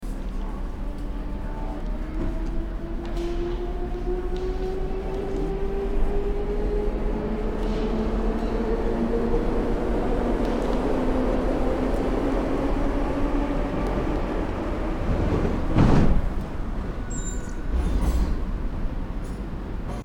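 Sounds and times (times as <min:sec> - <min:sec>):
subway ambience: 0:00.0 - 0:20.0.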